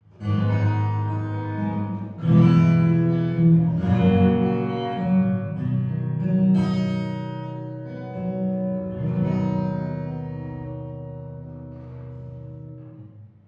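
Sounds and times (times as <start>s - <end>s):
acoustic music with dirty tape distortion: 0.0s - 13.4s.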